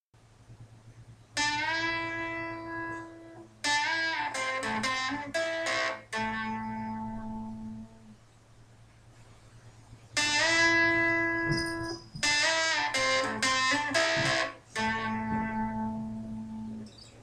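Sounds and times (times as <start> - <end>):
blues guitar licks: 1.3 - 8.2, 10.1 - 17.0.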